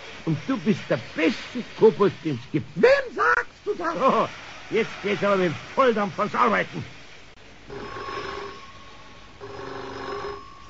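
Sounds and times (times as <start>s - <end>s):
speech: 0.2s - 7.0s
telephone ringing indoors: 7.7s - 10.6s.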